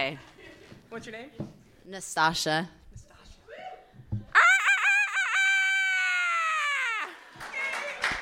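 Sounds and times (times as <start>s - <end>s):
speech: 0.0s - 0.3s, 0.9s - 2.8s
person imitating a rooster crowing: 4.4s - 7.2s.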